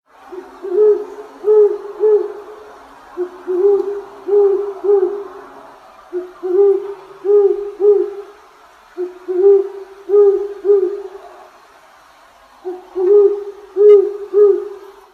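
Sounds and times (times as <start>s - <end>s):
great horned owl call: 0.3s - 2.6s, 3.2s - 5.4s, 6.1s - 8.4s, 9.0s - 11.3s, 12.6s - 15.0s.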